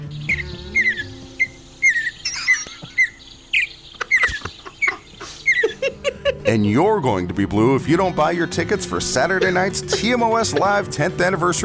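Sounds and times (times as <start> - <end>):
mountain bluebird whistled song: 0.0 - 5.8
laughter: 4.0 - 6.8, 8.4 - 11.2
speech: 6.5 - 11.6.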